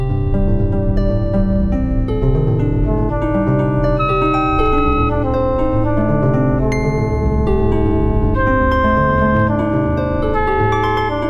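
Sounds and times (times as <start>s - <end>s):
rhythm in changing meter: 0.1s - 11.1s.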